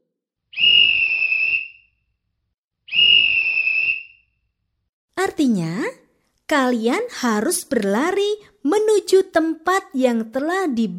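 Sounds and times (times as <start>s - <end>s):
whistle blasts as a signal in a children's group game: 0.5s - 2.0s, 2.9s - 4.4s
speech: 5.4s - 10.9s.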